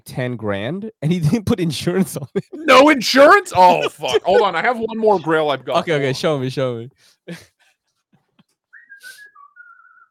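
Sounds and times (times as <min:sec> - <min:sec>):
speech: 0:00.1 - 0:07.5
laughter: 0:01.9 - 0:06.4
person whistling: 0:08.7 - 0:10.0.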